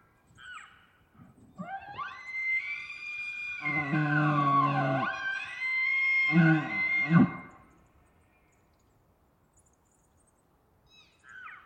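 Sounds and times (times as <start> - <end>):
deep grunting roars of bull elk: 3.6 - 5.0, 6.3 - 7.5
bull elk bugling in rutting season: 3.6 - 5.6, 6.3 - 7.6.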